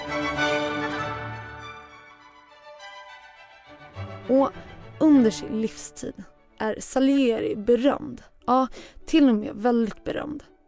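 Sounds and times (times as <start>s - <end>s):
classical orchestral music with sustained string chords: 0.0s - 6.6s
speech: 4.3s - 10.5s.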